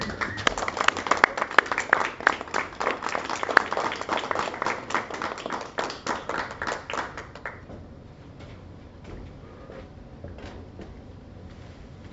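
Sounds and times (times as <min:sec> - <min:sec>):
crowd applauding: 0:00.0 - 0:07.7.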